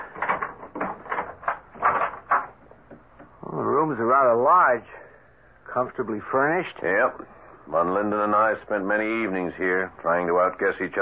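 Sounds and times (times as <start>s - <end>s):
keys clicking and rattling unlocking a door: 0.0s - 2.6s
door opening with a clunk: 0.0s - 3.4s
speech: 4.4s - 5.0s, 5.8s - 11.0s.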